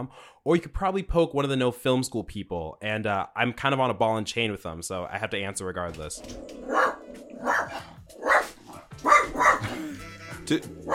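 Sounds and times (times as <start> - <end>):
speech: 0.0 - 6.9, 10.5 - 10.9
dog barking: 6.6 - 9.8.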